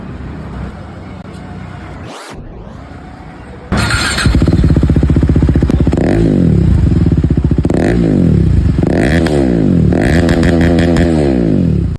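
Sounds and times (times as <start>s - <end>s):
KTM motorcycle exhaust: 3.7s - 11.9s.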